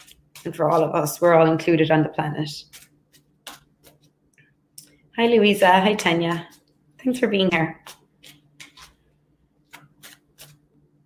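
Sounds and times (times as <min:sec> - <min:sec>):
speech: 0:00.4 - 0:02.8, 0:05.2 - 0:07.9
deck of tarot cards being shuffled: 0:02.6 - 0:04.1, 0:07.8 - 0:09.0, 0:09.7 - 0:10.7.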